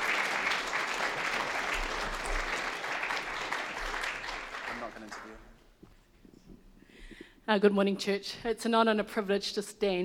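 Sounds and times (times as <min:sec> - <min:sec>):
church audience applauding: 0:00.0 - 0:05.6
speech: 0:07.5 - 0:10.0.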